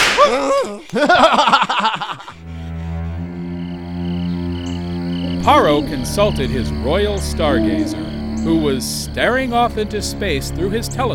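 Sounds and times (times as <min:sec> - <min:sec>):
whip cracks: 0:00.0 - 0:00.7
laughter: 0:00.0 - 0:03.2
speech: 0:00.3 - 0:01.5, 0:05.5 - 0:11.1
sustained music with steady tones: 0:02.4 - 0:11.1
wailing pained cries: 0:05.2 - 0:09.2.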